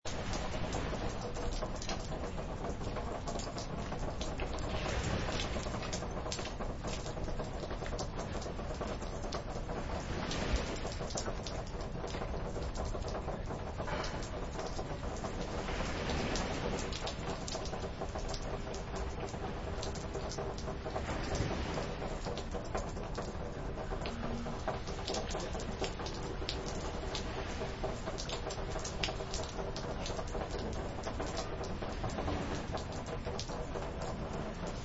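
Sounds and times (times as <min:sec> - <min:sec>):
rain: 0:00.0 - 0:34.8
beach surf: 0:00.1 - 0:34.8.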